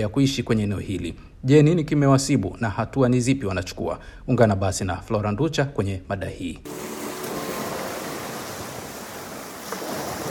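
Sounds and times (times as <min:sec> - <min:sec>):
speech: 0:00.0 - 0:06.9
Caribbean Sea waves breaking on the shore near the Monkey River in Belize: 0:06.7 - 0:10.2.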